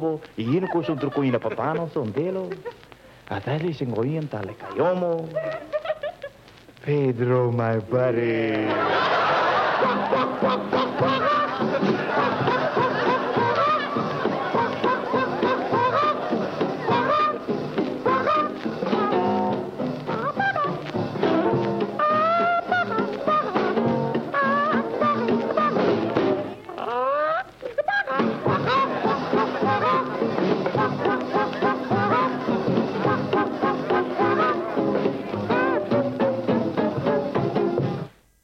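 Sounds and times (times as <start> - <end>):
speech: 0.0 - 5.7, 6.8 - 9.2
upbeat 1940s novelty jazz band: 0.0 - 38.2
laughter: 0.4 - 2.8, 4.5 - 6.4, 8.5 - 17.5, 27.0 - 36.0
voices imitating chicken clucking: 8.9 - 19.3, 22.0 - 35.9.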